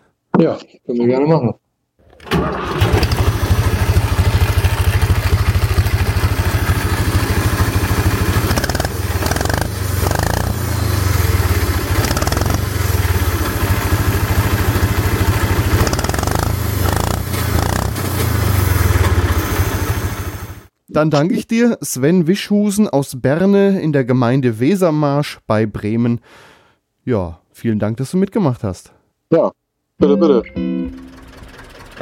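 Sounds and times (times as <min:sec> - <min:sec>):
speech: 0:00.4 - 0:01.6, 0:21.0 - 0:31.0
McCormick 423 tractor diesel engine starting and running: 0:02.0 - 0:20.7, 0:30.6 - 0:32.0.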